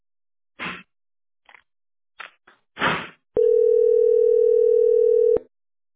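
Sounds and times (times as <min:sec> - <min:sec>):
telephone ringback tone on an unanswered call: 0:03.4 - 0:05.5.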